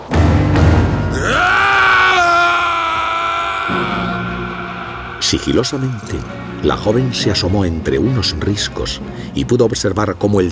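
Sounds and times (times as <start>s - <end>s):
scream from a valley: 0.1s - 7.8s
speech: 5.3s - 10.5s.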